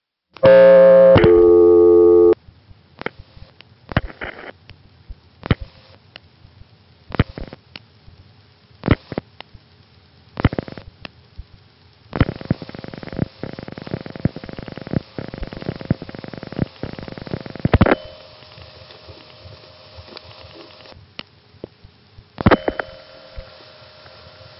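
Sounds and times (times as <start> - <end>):
buzzing two-part tone on a telephone loop circuit: 0.4 - 2.4, 12.2 - 19.2, 22.4 - 24.5.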